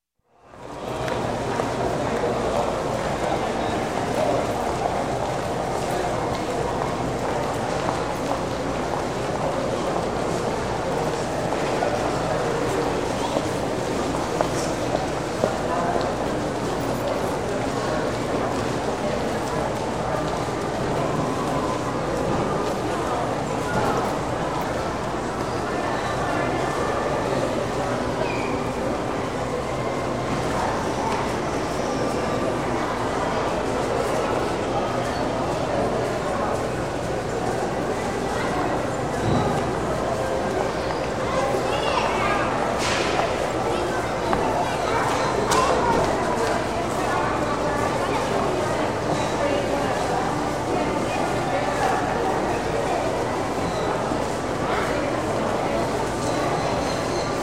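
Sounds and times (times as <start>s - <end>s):
large indoor shopping mall ambience: 0.3s - 57.4s.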